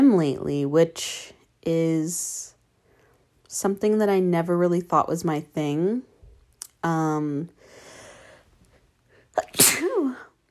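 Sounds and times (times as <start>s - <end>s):
speech: 0.2s - 2.5s, 3.5s - 6.1s, 6.8s - 7.6s
loud forceful sneeze: 9.4s - 10.3s.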